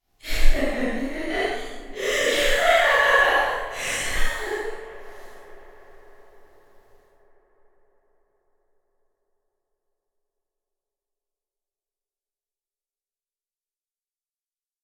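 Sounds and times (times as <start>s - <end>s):
woman laughing with echo: 0.2s - 5.8s.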